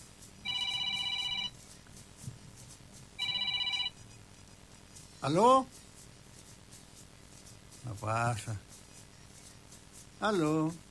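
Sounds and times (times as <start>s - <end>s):
telephone ringing with an incoming call, electronic warbling rings: 0.4s - 1.6s, 3.2s - 4.0s
speech: 5.2s - 5.8s, 7.9s - 8.7s, 10.2s - 10.8s.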